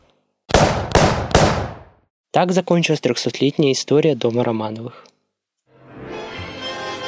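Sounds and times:
gunshots from a firing squad: 0.5 - 2.0
speech: 2.3 - 5.1.

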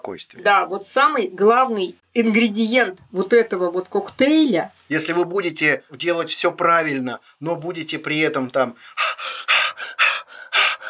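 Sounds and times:
speech: 0.0 - 9.4
person imitating rapid anxious panting: 8.8 - 10.8.

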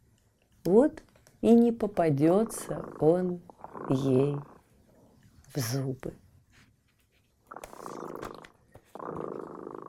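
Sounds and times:
speech: 0.6 - 4.5, 5.5 - 6.2
cat purring: 2.1 - 5.8, 7.4 - 9.8.

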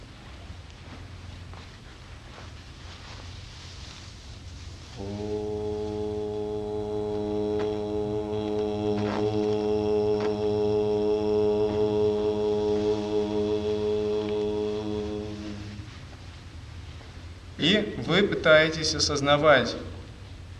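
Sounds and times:
single long syllable chanted during meditation as a low drone: 4.8 - 16.1
speech: 17.7 - 19.9.

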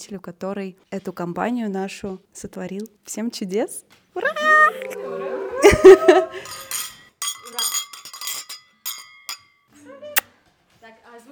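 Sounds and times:
speech: 0.0 - 6.7
glasses clinking in a New Year toast: 6.5 - 9.6.

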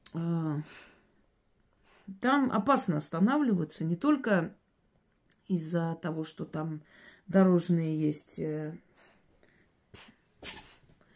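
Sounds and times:
speech: 0.1 - 0.9, 2.1 - 4.6, 5.5 - 8.9, 10.0 - 10.6
female dog sneezing: 10.0 - 10.9.

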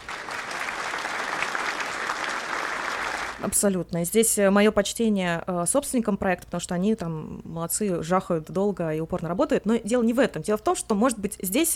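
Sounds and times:
group of people applauding: 0.0 - 3.4
speech: 3.4 - 11.7.

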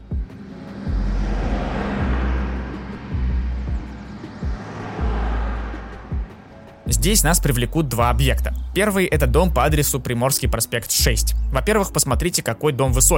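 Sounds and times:
heavy thumps as vehicles pass on a busy avenue: 0.0 - 6.9
dense road traffic roaring along a busy avenue on an embankment: 0.0 - 10.1
speech: 7.0 - 13.1.

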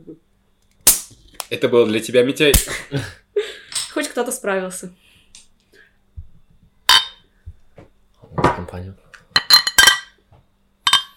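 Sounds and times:
speech: 1.5 - 3.2, 4.2 - 5.1, 8.7 - 9.1
glasses clinking in a toast: 6.9 - 7.2, 9.4 - 10.2, 10.8 - 11.1.

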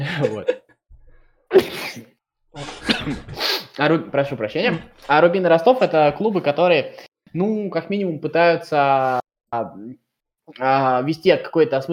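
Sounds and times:
laughter: 0.0 - 0.6
speech: 0.1 - 0.6, 3.8 - 11.9
sharp loud sneeze: 1.5 - 3.7.

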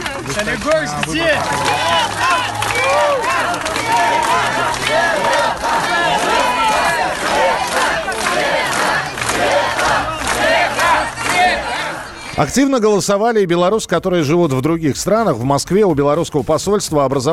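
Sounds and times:
several hundred supporters chanting and cheering outside a polling station in Belarus: 0.2 - 12.5
speech: 0.3 - 17.3.

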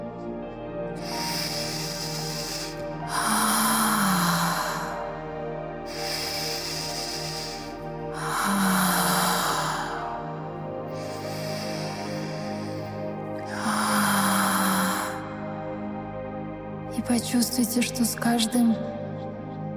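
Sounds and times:
soft sustained musical drone: 0.0 - 19.7
person breathing in through nose and out through mouth: 1.0 - 15.8
speech: 17.1 - 19.0.

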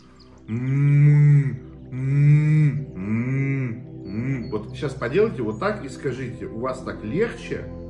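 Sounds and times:
single voice humming closed-mouth tones in vocal exercise: 0.4 - 4.6
speech: 0.5 - 0.9, 4.8 - 7.8.

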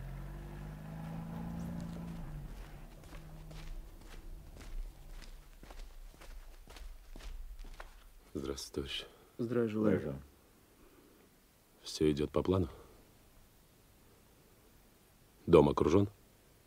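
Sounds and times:
low engine rumble: 0.0 - 8.2
footsteps of several people walking outdoors: 0.6 - 8.6
speech: 8.4 - 10.3, 11.9 - 12.8, 15.5 - 16.2.

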